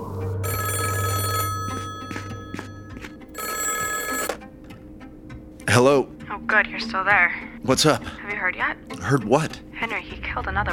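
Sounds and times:
telephone ringing: 0.4s - 4.4s
speech: 5.8s - 10.7s.

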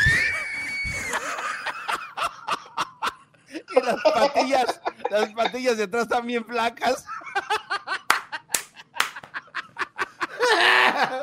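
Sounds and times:
giggling laughter building into a high-pitched laughing squeal: 0.0s - 5.7s, 7.0s - 11.2s
speech: 3.9s - 7.2s
sharp hand claps: 8.0s - 9.5s.

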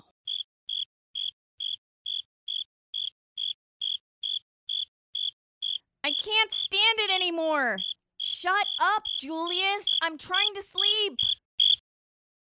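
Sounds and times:
single cricket chirping at night: 0.3s - 6.8s, 7.8s - 10.1s, 10.8s - 11.8s
speech: 6.2s - 11.4s.

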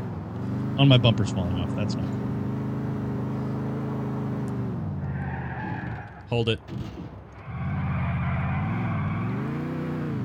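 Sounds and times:
video game car engine revving: 0.0s - 10.2s
speech: 0.8s - 2.3s, 6.3s - 7.2s
faint tire squeal: 5.0s - 10.0s.

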